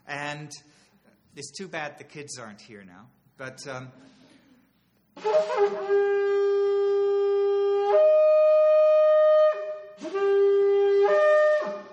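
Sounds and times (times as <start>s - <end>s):
speech: 0.4s - 4.2s, 5.2s - 6.0s
shofar ram's horn trumpet blasts: 5.2s - 11.9s.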